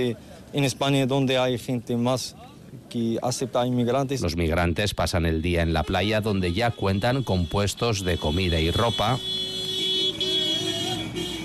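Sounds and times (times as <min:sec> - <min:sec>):
speech: 0:00.0 - 0:09.5
low traffic rumble: 0:00.0 - 0:11.4
car horns honking in the streets of Ceuta, Spain: 0:05.3 - 0:11.4.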